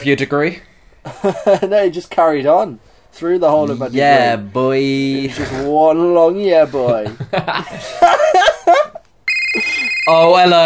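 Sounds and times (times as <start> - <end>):
speech: 0.0 - 10.6
people chuckling: 6.7 - 10.0
game-show banker's phone ringing with a bright electronic tone: 9.3 - 10.6.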